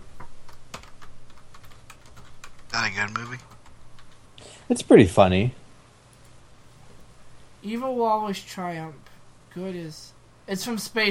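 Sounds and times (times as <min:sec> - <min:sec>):
typing a search query on a computer keyboard: 0:00.2 - 0:04.2
speech: 0:02.8 - 0:03.5, 0:04.7 - 0:05.6, 0:07.6 - 0:11.0.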